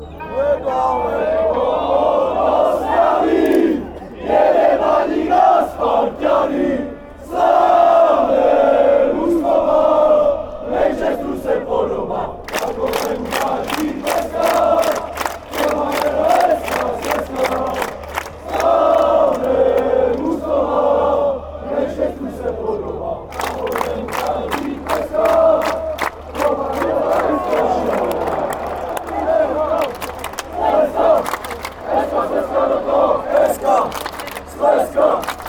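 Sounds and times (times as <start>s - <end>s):
chanting near Ostrava: 0.0s - 35.4s.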